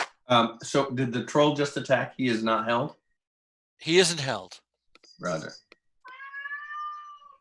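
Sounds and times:
speech: 0:00.3 - 0:03.0, 0:03.8 - 0:04.6, 0:05.2 - 0:05.7
cat meowing: 0:06.0 - 0:07.3.

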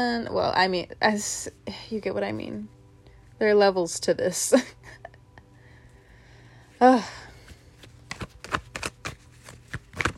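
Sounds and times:
speech: 0:00.0 - 0:02.8, 0:03.4 - 0:05.0, 0:06.8 - 0:07.3
tarot cards being shuffled and drawn: 0:07.4 - 0:10.1.

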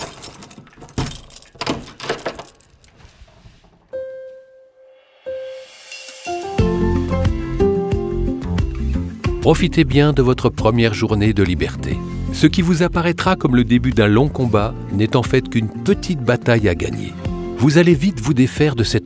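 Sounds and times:
keys jangling: 0:00.0 - 0:03.4
cell door lock turning: 0:00.0 - 0:04.0
heavy cell door creaking open: 0:00.0 - 0:04.0
music: 0:04.0 - 0:19.0
speech: 0:09.4 - 0:19.0.

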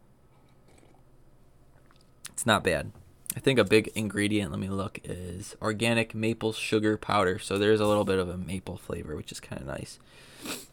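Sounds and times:
person sipping a mushroom latte: 0:00.3 - 0:01.1, 0:10.4 - 0:10.7
speech: 0:02.4 - 0:10.6.

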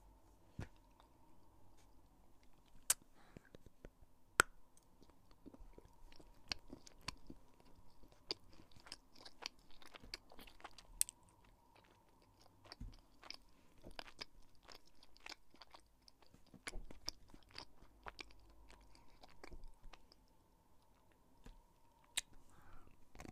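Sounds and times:
faint steady hum: 0:00.0 - 0:23.3
chewing and crunching on chocolate lolly, sweets and sprinkles: 0:04.8 - 0:23.3.

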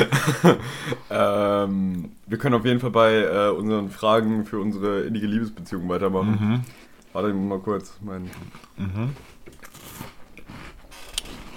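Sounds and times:
laughter: 0:00.0 - 0:01.0
speech: 0:00.3 - 0:10.1
chocolate sandwich biscuits being bitten and chewed: 0:05.7 - 0:11.5.

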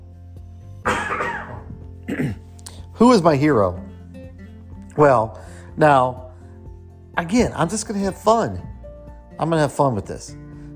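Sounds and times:
person coughing: 0:00.9 - 0:02.5
speech: 0:02.1 - 0:03.9, 0:05.0 - 0:06.2, 0:07.2 - 0:08.7, 0:09.4 - 0:10.4.

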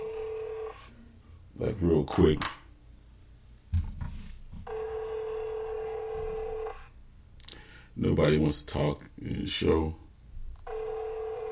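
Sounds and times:
steady electronic phone tone: 0:00.0 - 0:00.9, 0:04.7 - 0:06.9, 0:10.6 - 0:11.5
speech: 0:01.6 - 0:02.6, 0:08.0 - 0:10.0.

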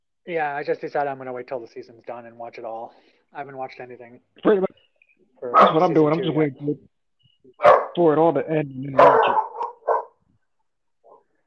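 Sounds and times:
speech: 0:00.2 - 0:04.8, 0:05.4 - 0:06.9, 0:07.6 - 0:09.4
dog barking: 0:05.5 - 0:05.9, 0:07.6 - 0:08.0, 0:09.0 - 0:10.2, 0:11.0 - 0:11.2.

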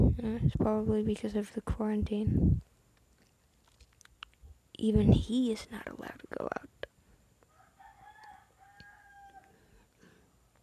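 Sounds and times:
steady outdoor hum: 0:00.0 - 0:10.6
speech: 0:00.3 - 0:02.7, 0:04.8 - 0:06.8
rooster crowing: 0:07.5 - 0:09.8.

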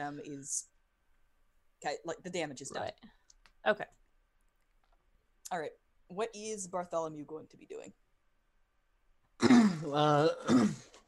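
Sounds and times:
speech: 0:00.0 - 0:00.7, 0:01.8 - 0:04.0, 0:05.5 - 0:08.0, 0:09.4 - 0:10.9
person clearing throat: 0:09.4 - 0:11.0.

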